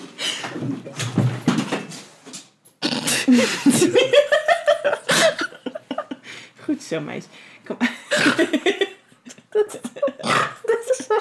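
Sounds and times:
dog paws and body scuffling and pattering: 0.5s - 2.6s
speech: 3.3s - 4.3s, 6.9s - 8.8s
laughter: 3.3s - 6.2s, 8.2s - 11.1s.

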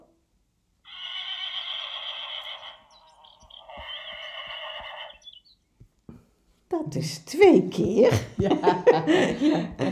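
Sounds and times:
horse neighing with long shrill whinnies: 0.8s - 5.5s
speech: 6.8s - 9.9s
laughter: 8.0s - 9.9s.

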